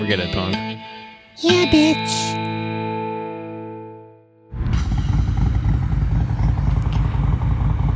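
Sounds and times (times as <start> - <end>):
speech: 0.0 - 2.5
motorcycle engine revving with a throaty roar: 4.6 - 7.9.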